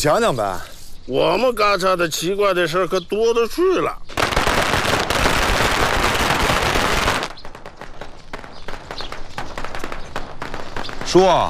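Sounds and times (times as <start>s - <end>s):
speech: 0.0s - 4.7s, 11.1s - 11.4s
string of firecrackers exploding: 4.2s - 11.4s.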